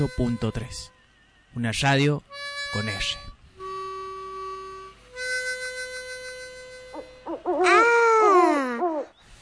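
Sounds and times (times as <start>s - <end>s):
speech: 0.0s - 3.2s
owl hooting: 6.9s - 9.2s.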